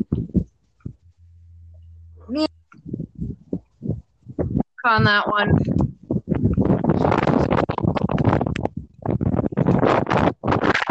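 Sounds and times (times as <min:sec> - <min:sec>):
loud gusty wind buffeting a microphone outdoors: 0:00.0 - 0:01.1, 0:02.3 - 0:10.9
speech: 0:02.3 - 0:02.6, 0:04.8 - 0:05.9.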